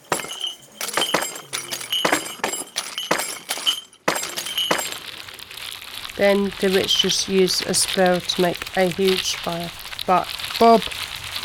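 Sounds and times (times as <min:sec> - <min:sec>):
glass potion bottles smashing: 0:00.0 - 0:05.4
speech: 0:06.2 - 0:11.1.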